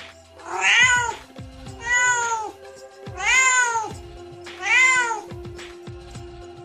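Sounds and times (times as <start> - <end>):
kittens crying in a cage: 0.4 - 4.0, 4.6 - 5.4.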